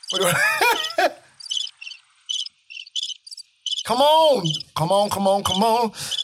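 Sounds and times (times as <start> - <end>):
crickets chirping: 0.0 - 6.2
laughter: 0.1 - 1.2
speech: 0.1 - 1.2, 3.9 - 6.2
person groaning: 0.2 - 0.5.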